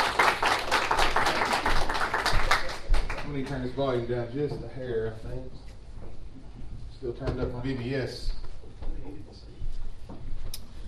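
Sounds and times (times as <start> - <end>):
church audience applauding at a morning service: 0.0 - 3.6
speech: 3.4 - 5.7, 7.0 - 8.4.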